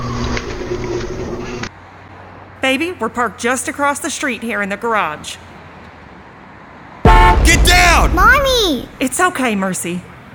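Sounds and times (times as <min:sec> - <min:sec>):
speech: 0:02.7 - 0:05.5, 0:07.9 - 0:10.1
car horn honking: 0:07.1 - 0:07.9.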